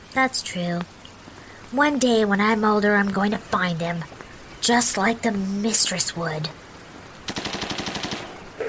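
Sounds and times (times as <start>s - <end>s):
speech: 0.1s - 1.0s, 1.7s - 6.7s
rapid burst of gunshots: 7.3s - 8.5s.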